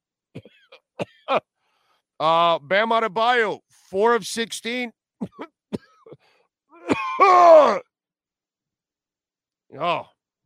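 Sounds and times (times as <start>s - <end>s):
exaggerated gravelly throat clearing: 0.3s - 1.4s, 5.2s - 7.2s
speech: 1.3s - 1.5s, 2.2s - 5.5s, 7.2s - 7.9s, 9.7s - 10.1s.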